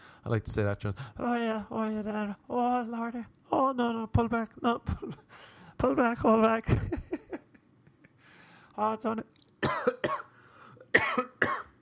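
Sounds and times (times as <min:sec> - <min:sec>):
speech: 0:00.2 - 0:07.2, 0:08.8 - 0:10.0
harsh coughing: 0:09.6 - 0:11.7.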